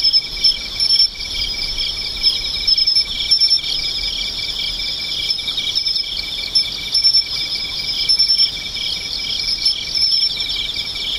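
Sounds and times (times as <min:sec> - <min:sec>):
insects chorus of buzzy trills and rapid chirps: 0:00.0 - 0:11.1.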